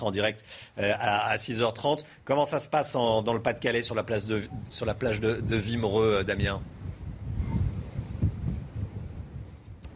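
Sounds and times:
speech: 0.0s - 6.8s
strong gusting storm wind on a beach buffeting the microphone: 3.4s - 9.9s.

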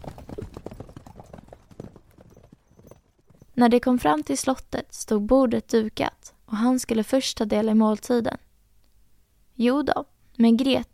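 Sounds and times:
horse-drawn carriage hooves clip-clopping: 0.0s - 4.4s
speech: 3.6s - 8.4s, 9.6s - 10.9s.

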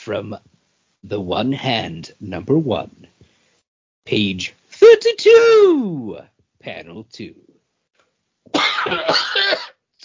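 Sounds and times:
speech: 0.0s - 3.1s, 4.0s - 7.5s, 8.5s - 10.0s
harsh throaty cough: 8.5s - 9.8s.

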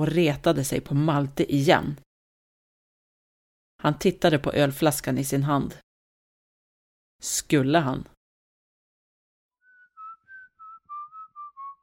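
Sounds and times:
speech: 0.0s - 2.0s, 3.8s - 5.8s, 7.2s - 8.2s
man whistling off-key tune while watering the garden: 9.6s - 11.8s.

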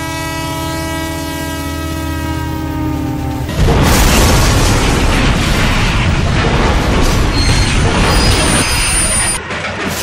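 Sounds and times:
steady rumbling tone: 0.2s - 8.7s
crashing boom of a train wreck: 3.5s - 10.0s.

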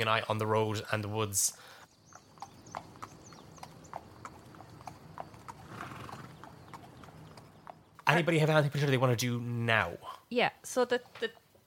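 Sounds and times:
speech: 0.0s - 1.8s, 8.1s - 11.4s
horse hooves clip-clopping at a trot: 1.8s - 9.7s, 10.4s - 11.6s.

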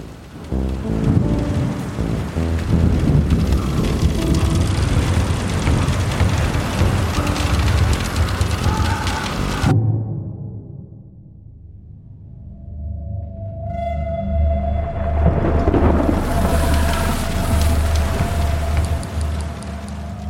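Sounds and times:
heavy rain pouring in a storm at sea: 0.0s - 9.8s, 15.0s - 20.2s
low rumbling: 0.0s - 20.2s
storm noise at sea: 0.0s - 20.2s.

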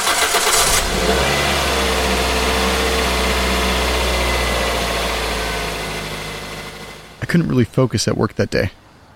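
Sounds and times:
car engine starting: 0.0s - 7.3s
speech: 7.3s - 8.8s.

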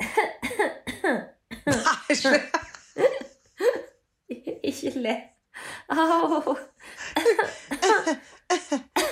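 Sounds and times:
person coughing to clear something from their throat: 0.0s - 2.4s, 7.1s - 9.1s
speech: 1.7s - 2.6s, 5.0s - 5.3s, 5.9s - 6.7s.

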